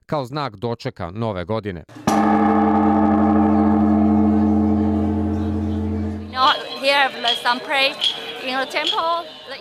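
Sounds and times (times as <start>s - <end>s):
speech: 0.1s - 2.9s, 6.4s - 9.4s
huge Buddhist temple bell struck at midnight at a Tokyo temple for New Year: 2.1s - 6.8s.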